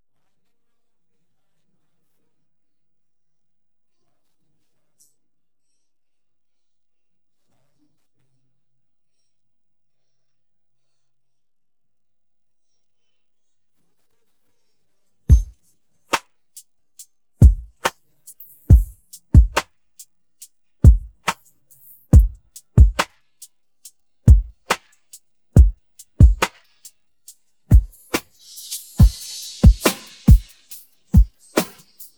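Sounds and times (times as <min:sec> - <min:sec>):
drums stem: 0:15.3 - 0:15.5, 0:17.4 - 0:19.7, 0:20.8 - 0:23.2, 0:23.8 - 0:32.1.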